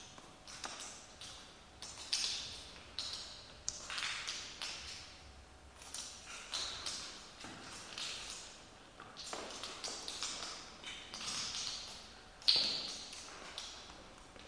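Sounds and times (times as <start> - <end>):
water dripping in a cave: 0.0 - 14.4.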